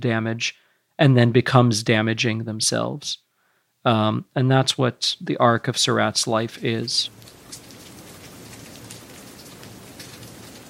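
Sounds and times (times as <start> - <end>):
speech: 0.0 - 3.2, 3.8 - 7.4
soft rain falling: 5.8 - 10.6.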